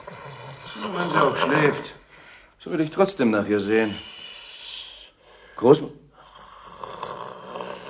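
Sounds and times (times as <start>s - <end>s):
loud rasping snore: 0.0s - 1.4s, 6.2s - 7.8s
speech: 0.8s - 2.0s, 2.6s - 4.1s, 5.6s - 6.0s.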